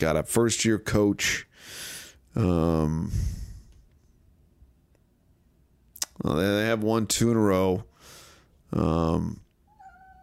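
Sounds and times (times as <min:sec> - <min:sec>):
speech: 0:00.0 - 0:03.4, 0:06.2 - 0:07.9, 0:08.7 - 0:09.4
cat meowing: 0:09.7 - 0:10.2
faint tonal squeak: 0:09.7 - 0:10.2.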